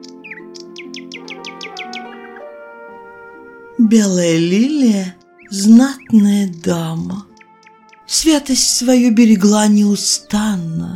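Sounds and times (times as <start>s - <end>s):
nightingale singing trills: 0.0s - 2.6s, 3.8s - 10.9s
sustained instrumental tones: 1.1s - 9.6s
speech: 3.8s - 7.3s, 8.1s - 10.9s.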